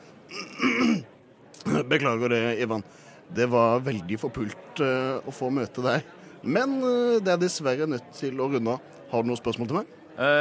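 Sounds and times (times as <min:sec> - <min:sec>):
throat clearing: 0:00.3 - 0:01.9
speech: 0:01.6 - 0:10.4.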